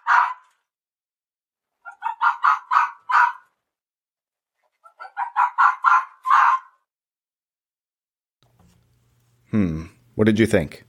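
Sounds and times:
red fox barking and yelping: 0:00.0 - 0:00.6, 0:01.8 - 0:03.6, 0:04.8 - 0:06.9
speech: 0:09.6 - 0:10.8.

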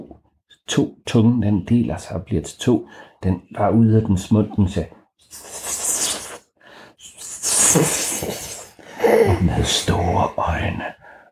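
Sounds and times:
speech: 0:00.7 - 0:05.6, 0:07.7 - 0:11.0
voice imitating the hiss of a giant snake: 0:05.2 - 0:09.4.

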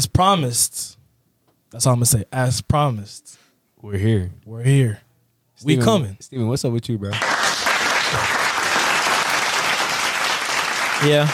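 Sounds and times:
speech: 0:00.0 - 0:01.0, 0:01.7 - 0:05.0, 0:05.6 - 0:07.4, 0:11.0 - 0:11.3
crowd applauding: 0:07.2 - 0:11.3.

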